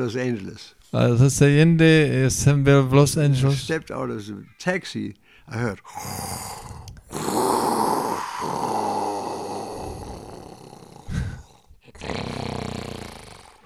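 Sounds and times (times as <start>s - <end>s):
speech: 0.0s - 7.7s
man's voice imitating a man snoring in deep sleep: 5.9s - 13.6s.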